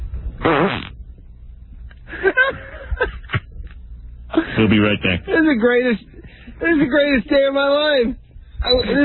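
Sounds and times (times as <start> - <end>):
loud drawn-out fart: 0.4 - 1.0
speech: 4.6 - 9.0.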